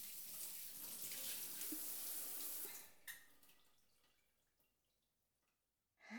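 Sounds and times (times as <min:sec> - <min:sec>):
warm water pouring over body in bath: 0:00.0 - 0:04.6
water dripping: 0:00.0 - 0:05.5.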